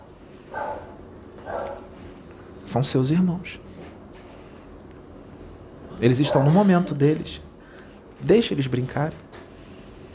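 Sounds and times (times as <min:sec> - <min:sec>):
dogs barking: 0:00.0 - 0:02.0, 0:06.0 - 0:07.2
low steady hum: 0:00.0 - 0:10.1
speech: 0:02.7 - 0:03.8, 0:06.0 - 0:07.5, 0:08.2 - 0:09.4.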